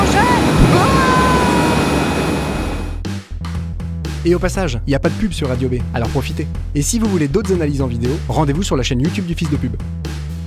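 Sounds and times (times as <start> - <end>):
faint whining tone: 0.0 - 3.0
airplane engine roar: 0.0 - 3.2
speech: 4.2 - 10.2.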